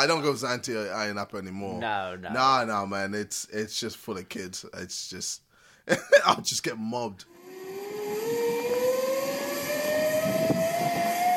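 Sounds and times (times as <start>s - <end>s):
speech: 0.0s - 7.4s
airplane engine roaring overhead: 7.3s - 11.3s.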